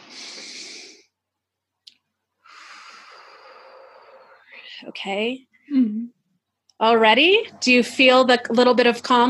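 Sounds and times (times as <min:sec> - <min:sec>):
deep breaths drawn during a guided calming exercise: 0:00.0 - 0:01.2, 0:02.4 - 0:04.9
speech: 0:04.8 - 0:06.2, 0:06.8 - 0:09.2.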